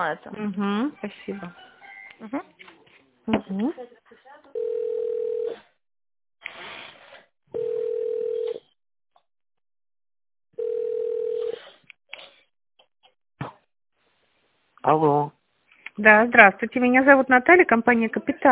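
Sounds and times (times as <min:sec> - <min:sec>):
speech: 0:00.0 - 0:04.0, 0:14.8 - 0:15.4, 0:16.0 - 0:18.5
telephone ringback tones while a business call is transferred: 0:04.6 - 0:05.6, 0:07.6 - 0:08.7, 0:10.6 - 0:11.6.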